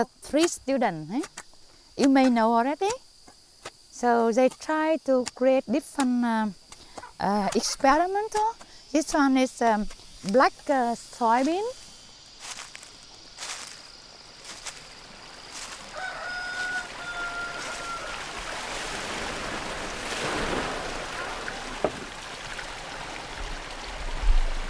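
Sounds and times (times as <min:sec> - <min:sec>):
speech: 0:00.0 - 0:01.4, 0:02.0 - 0:03.0, 0:04.0 - 0:06.6, 0:07.2 - 0:11.8
stream water pouring through bamboo spillways: 0:14.5 - 0:24.6
rooster crowing faintly: 0:15.6 - 0:18.5.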